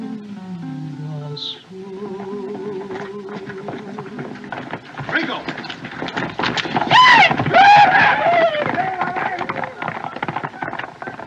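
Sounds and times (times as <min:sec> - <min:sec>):
hooves of spare horses galloping away: 0:01.8 - 0:11.2
horses whinnying: 0:02.9 - 0:11.2.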